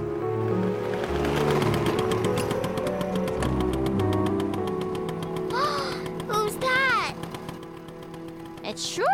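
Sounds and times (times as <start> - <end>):
small motor scooter engine buzzing as it approaches: 0.4 - 9.1.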